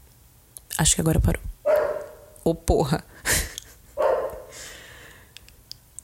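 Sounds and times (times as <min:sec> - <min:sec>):
speech: 0:00.8 - 0:01.6, 0:02.5 - 0:03.3
dog barking: 0:01.6 - 0:02.5, 0:04.0 - 0:04.8.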